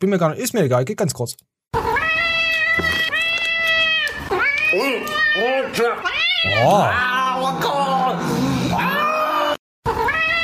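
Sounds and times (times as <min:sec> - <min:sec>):
speech: 0:00.0 - 0:01.9, 0:04.7 - 0:09.0
cat meowing: 0:01.8 - 0:07.3, 0:08.7 - 0:10.4.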